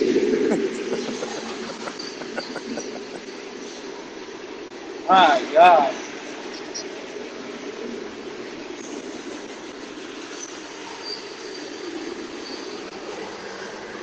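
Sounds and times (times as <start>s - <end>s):
freight train rolling past: 0.0s - 14.0s
laughter: 0.4s - 3.4s
speech: 5.1s - 6.0s
faint metallic squeals and clatter of a freight train: 10.2s - 12.9s.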